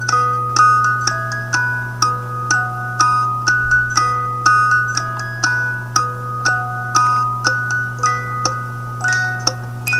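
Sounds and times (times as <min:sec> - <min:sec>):
music box: 0:00.0 - 0:09.9.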